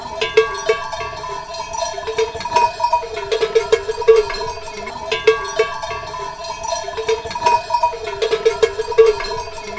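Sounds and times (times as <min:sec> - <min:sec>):
sheep bells at a sheepfold in the Cevennes: 0:00.0 - 0:09.7.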